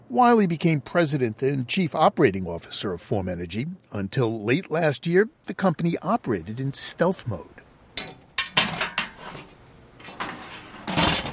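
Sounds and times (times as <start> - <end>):
speech: 0.1 - 7.6
metal lid being removed from a 55-gallon drum in a cavernous lab space: 8.0 - 9.2
metal lid scraping on a drum: 8.0 - 11.3.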